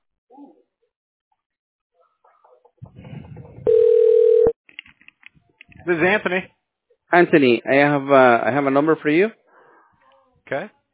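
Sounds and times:
telephone dial tone while dialing a call: 3.7s - 4.6s
speech: 5.9s - 9.4s, 10.5s - 10.9s.

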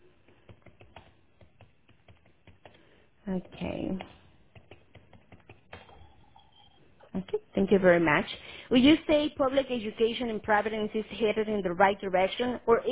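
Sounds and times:
keyboard typing: 0.2s - 6.8s
speech: 3.3s - 4.2s, 7.2s - 12.9s.

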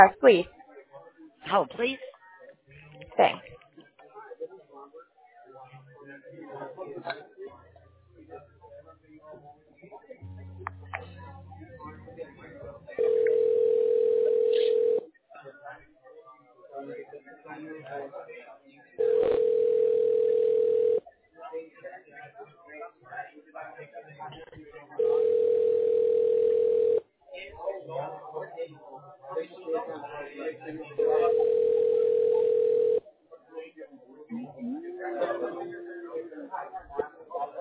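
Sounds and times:
speech: 0.0s - 0.6s, 1.4s - 2.1s, 3.2s - 3.6s, 6.1s - 7.6s, 16.8s - 19.4s, 27.4s - 31.9s
voices: 0.0s - 26.0s, 26.8s - 37.5s
telephone line noise: 10.2s - 13.3s
electronic telephone line tone during call transfer to voicemail: 12.1s - 15.0s, 19.0s - 21.0s, 25.0s - 27.0s, 31.0s - 33.0s.

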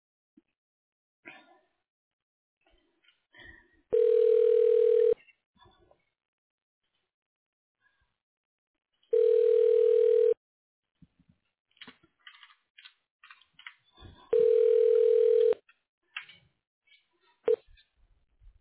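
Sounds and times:
telephone line tones while a call is transferred to voicemail: 3.9s - 5.2s, 9.1s - 10.4s, 14.3s - 15.6s.

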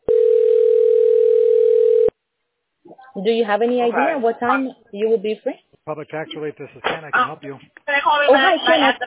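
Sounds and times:
telephone dial tone while placing a call: 0.1s - 2.1s
speech: 3.2s - 9.0s.

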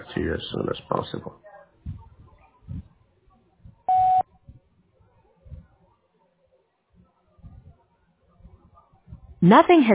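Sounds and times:
speech: 0.2s - 1.5s, 9.4s - 9.9s
voicemail answering machine beep: 3.9s - 4.2s.

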